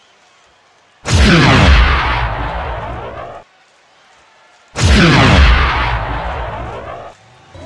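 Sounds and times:
starting plasma cannon blasts fired to start a race: 1.1 - 3.3, 4.8 - 7.0.

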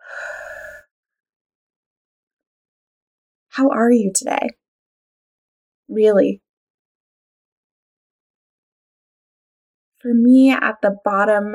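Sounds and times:
deep breath in through the nose and out through the mouth: 0.0 - 0.9
speech: 3.6 - 4.6, 5.9 - 6.4, 10.0 - 11.5.

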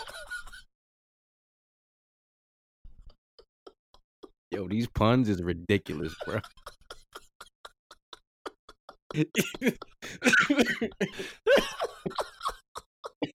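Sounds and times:
laughter: 0.0 - 0.6, 3.4 - 13.3
speech: 4.5 - 6.7, 9.2 - 12.3
person coughing harshly: 9.2 - 12.5.

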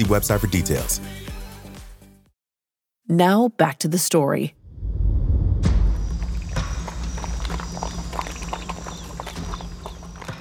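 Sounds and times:
speech: 0.0 - 1.3, 3.1 - 4.6
low rumbling background: 4.6 - 10.3
horse hooves clip-clopping at a walking pace: 6.0 - 10.3.

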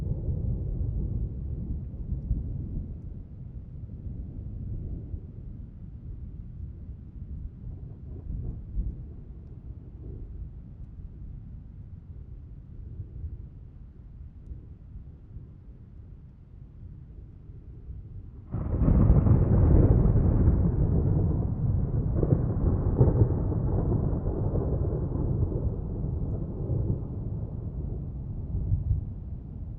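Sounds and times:
deep thunder rumbling in a night storm over the mountains: 0.0 - 5.6, 18.4 - 29.7
thunder crash: 18.5 - 27.2.

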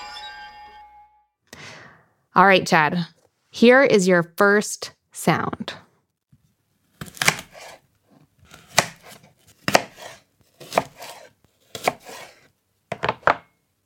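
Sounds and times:
speech: 2.4 - 5.8
knife slicing food on a cutting board: 6.9 - 13.5.

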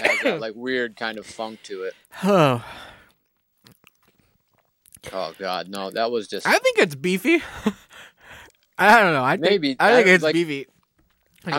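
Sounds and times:
speech: 0.2 - 2.9, 5.0 - 8.1, 8.8 - 10.7
wet chewing of a jelly bean: 2.0 - 6.0, 7.9 - 8.8, 10.6 - 11.5.

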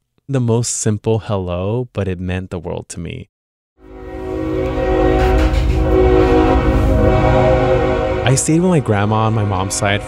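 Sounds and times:
speech: 0.3 - 3.3, 8.3 - 10.0
freight train horn blaring in Mexico: 3.8 - 10.0.

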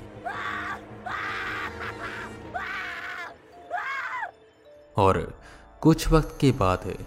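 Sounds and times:
two people screaming in a basement behind a closed door: 0.2 - 4.4
speech: 5.0 - 7.0.

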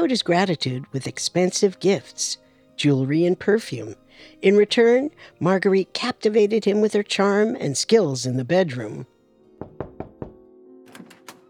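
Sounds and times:
speech: 0.0 - 9.1
firm knocking on a door: 9.6 - 11.4.

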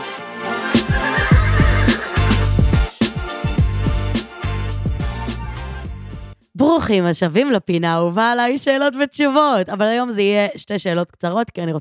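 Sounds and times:
busy rhythmic music with deep bass notes: 0.6 - 6.4
horse neighing and whinnying: 1.0 - 2.4
speech: 6.8 - 11.7.

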